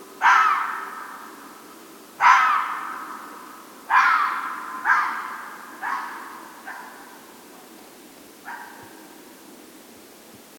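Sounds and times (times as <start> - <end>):
red fox barking at night: 0.2 - 1.1, 2.2 - 7.3, 8.4 - 9.1.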